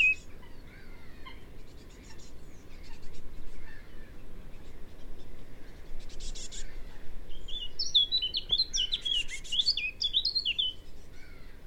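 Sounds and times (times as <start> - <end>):
Eurasian blackcap Sylvia atricapilla loud bright tumbling warble: 0.0 - 0.3, 7.3 - 10.9
soft bird chirps and twitters in the background: 0.0 - 11.4.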